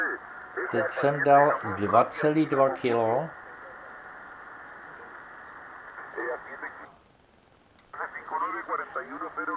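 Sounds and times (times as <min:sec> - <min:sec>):
garbled voice transmission on a narrow-band radio receiver: 0:00.0 - 0:03.9, 0:06.0 - 0:07.0, 0:08.0 - 0:09.5
steady hiss of static from a narrow-band radio receiver: 0:00.0 - 0:09.5
speech: 0:00.7 - 0:03.4.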